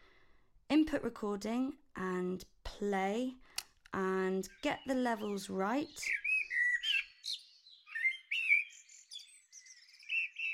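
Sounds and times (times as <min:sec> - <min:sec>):
speech: 0:00.7 - 0:06.2
blackbird singing: 0:04.4 - 0:10.5.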